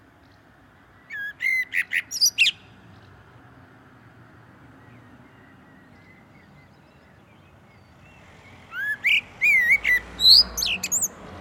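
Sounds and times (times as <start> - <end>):
common blackbird Turdus merula fluted whistles and squeaky chirps: 1.1 - 2.6, 8.7 - 11.1.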